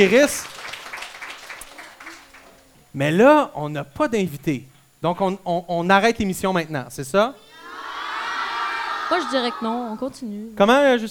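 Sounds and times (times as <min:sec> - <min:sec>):
speech: 0:00.0 - 0:00.6, 0:02.9 - 0:07.4, 0:09.1 - 0:11.1
applause from a small group: 0:00.0 - 0:02.7.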